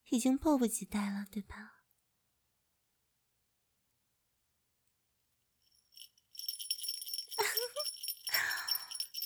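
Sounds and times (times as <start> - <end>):
speech: 0.1 - 1.8
small bell jingling: 5.6 - 9.2.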